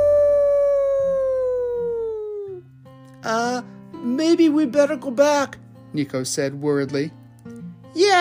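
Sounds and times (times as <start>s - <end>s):
animal howling in the woods: 0.0s - 2.6s
speech: 3.3s - 7.2s.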